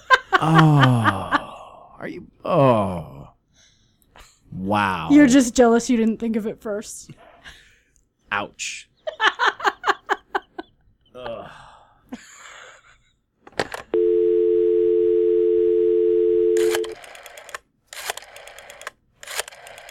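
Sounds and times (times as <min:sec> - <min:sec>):
laughter: 0:00.0 - 0:01.6, 0:09.0 - 0:11.5
speech: 0:00.4 - 0:01.2, 0:02.0 - 0:03.1, 0:04.7 - 0:07.6, 0:08.3 - 0:09.3, 0:11.2 - 0:12.3
steady loud dial tone: 0:14.0 - 0:17.0
rotary telephone dial turning: 0:16.6 - 0:19.8.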